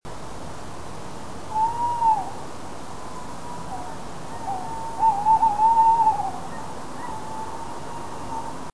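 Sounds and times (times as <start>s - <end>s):
male tawny owl Strix aluco hooting in early spring: 1.5s - 2.4s, 3.1s - 8.7s.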